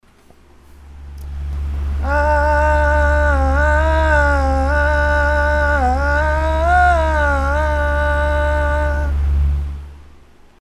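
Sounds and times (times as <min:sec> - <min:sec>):
voice through a fan: 0:01.3 - 0:09.8.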